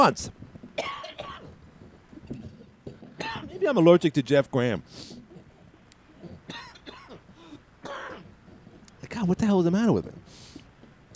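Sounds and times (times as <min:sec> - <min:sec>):
speech: 0:00.0 - 0:01.0, 0:03.6 - 0:05.2, 0:09.2 - 0:10.3
harsh coughing: 0:00.8 - 0:01.6, 0:02.9 - 0:03.7, 0:06.2 - 0:08.4.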